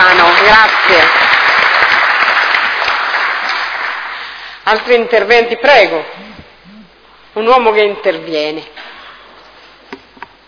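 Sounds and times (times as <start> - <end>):
room full of people applauding departing speakers: 0.0 - 4.4
speech: 4.7 - 6.3, 7.4 - 8.9.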